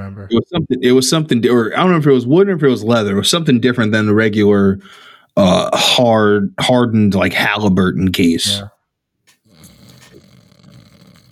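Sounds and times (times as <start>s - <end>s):
speech: 0.2s - 8.7s
raspy snoring: 9.3s - 11.3s.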